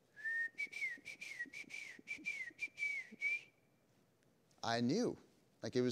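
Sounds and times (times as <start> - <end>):
person whistling a grandfather's distinctive whistle: 0.1 - 3.6
speech: 4.6 - 5.9.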